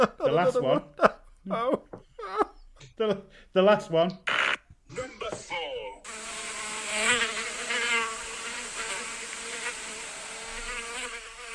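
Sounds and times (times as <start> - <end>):
laughter: 0.0 - 2.6, 4.9 - 5.8
speech: 0.0 - 5.6
fly buzzing: 4.3 - 4.6, 6.0 - 11.5.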